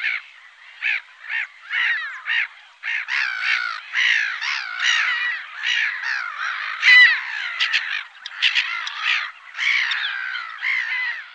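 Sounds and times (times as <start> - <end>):
black-headed gull calls, hoarse wavering squawks: 0.0 - 11.3.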